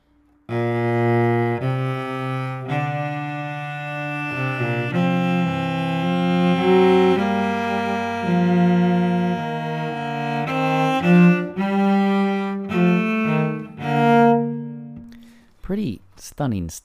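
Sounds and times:
musical canon in augmentation with contrary motion in counterpoint: 0:00.0 - 0:16.2
speech: 0:16.4 - 0:16.8.

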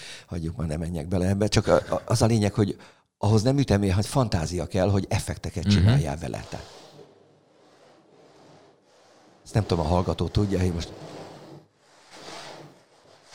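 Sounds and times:
speech: 0:00.3 - 0:06.8, 0:09.5 - 0:11.1
person speaking loudly: 0:05.6 - 0:06.1
fingernails scratching a wooden tabletop: 0:06.0 - 0:13.3.

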